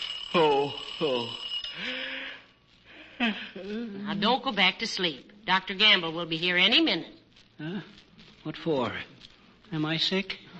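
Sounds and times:
alarm clock ringing in the morning: 0.0 - 2.6
speech: 3.2 - 10.5.

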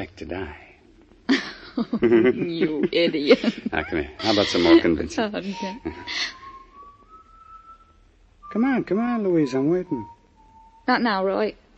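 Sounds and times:
speech: 0.0 - 0.6, 1.8 - 6.4, 8.5 - 10.2, 10.9 - 11.6
low hum: 0.0 - 11.7
laughter: 1.3 - 6.3
person whistling a single sustained tone: 4.2 - 11.2.

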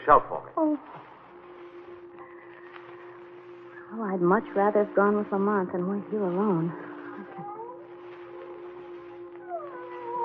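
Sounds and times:
steady low drone: 0.0 - 10.2
speech: 0.1 - 1.1, 3.9 - 7.5
drawn-out wavering cat-like yowl: 9.4 - 10.2.

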